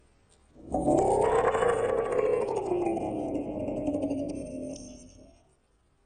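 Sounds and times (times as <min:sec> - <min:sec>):
Allosaurus dinosaur roars: 0:00.6 - 0:05.4.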